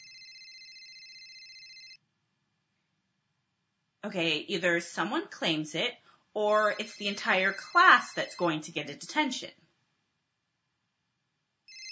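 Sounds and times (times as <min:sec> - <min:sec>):
mobile phone ringing in a classroom: 0:00.0 - 0:02.0, 0:06.8 - 0:08.3, 0:11.7 - 0:11.8
speech: 0:04.0 - 0:09.6.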